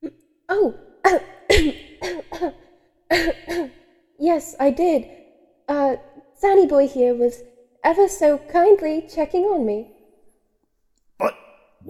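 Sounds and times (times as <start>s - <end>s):
speech: 0.6s - 1.7s, 4.6s - 5.2s, 6.4s - 9.9s, 11.2s - 11.8s
raspy coughing and throat clearing: 1.4s - 3.8s.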